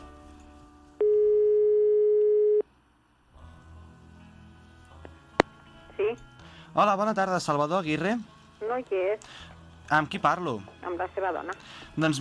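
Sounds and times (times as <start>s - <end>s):
low hum: 0.0s - 12.1s
ringback tone of an outgoing telephone call: 1.0s - 2.6s
speech: 6.8s - 12.1s.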